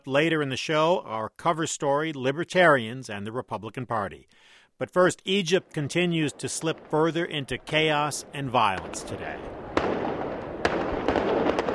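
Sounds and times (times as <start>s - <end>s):
speech: 0.0s - 9.7s
steady wash of noise: 0.0s - 11.7s
gunfire at a central Cairo mosque: 6.2s - 11.7s.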